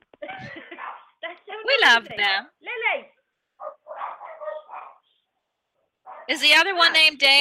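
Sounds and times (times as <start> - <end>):
dogs barking at someone at the door: 0.6 - 1.2, 3.6 - 5.1, 6.0 - 6.4
speech: 1.8 - 3.0, 6.3 - 7.3.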